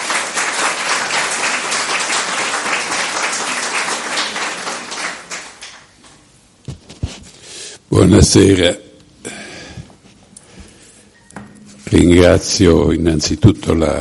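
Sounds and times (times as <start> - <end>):
audience applause welcoming speakers: 0.0 - 6.0
speech: 8.0 - 8.8, 12.1 - 13.9.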